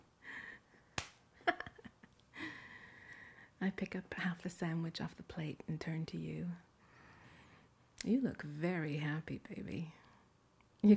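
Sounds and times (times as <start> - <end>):
hand slapping skin: 1.0 - 1.3
speech: 3.6 - 6.7, 8.0 - 10.0.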